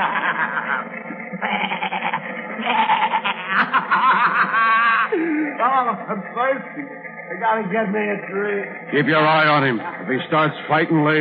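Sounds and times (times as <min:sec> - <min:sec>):
billy goats bleating: 0:00.0 - 0:05.2
laughter: 0:00.0 - 0:07.0
speech: 0:05.6 - 0:11.1.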